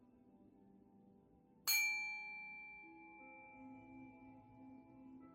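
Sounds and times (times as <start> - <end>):
meditation bell struck once: 1.7 - 5.2.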